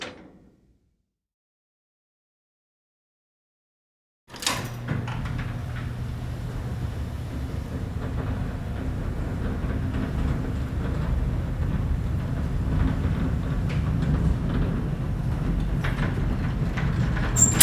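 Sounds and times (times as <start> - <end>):
prison bars closing: 4.3 - 17.6.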